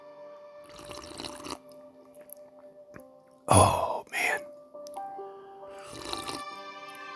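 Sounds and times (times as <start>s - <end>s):
soft tonal music: 0.0s - 7.1s
rooibos and chamomile tea poured into a cup: 0.7s - 2.4s, 3.5s - 4.4s, 5.7s - 7.1s.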